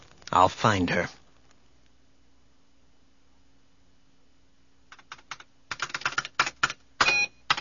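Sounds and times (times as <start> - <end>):
speech: 0.3 - 1.2
typing a command on a ramshackle keyboard: 4.9 - 7.6.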